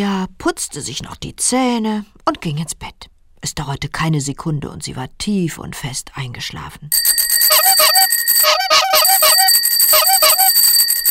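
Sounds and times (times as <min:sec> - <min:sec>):
speech: 0:00.0 - 0:07.9
bicycle bells ringing: 0:06.9 - 0:11.0
horn honking: 0:07.5 - 0:10.5.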